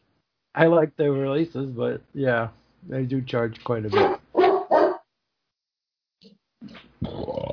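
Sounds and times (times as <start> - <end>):
speech: 0.6 - 4.2
dog barking: 3.9 - 5.0.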